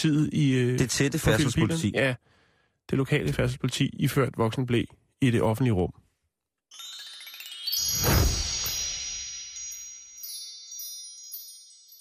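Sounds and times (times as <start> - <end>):
speech: 0.0 - 2.3, 2.9 - 6.0
bright bell chime ringing: 6.7 - 11.9.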